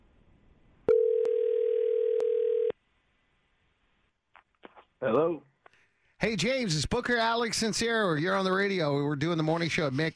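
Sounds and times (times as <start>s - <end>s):
telephone dial tone while placing a call: 0.9s - 2.7s
speech: 5.0s - 5.5s, 6.2s - 10.1s.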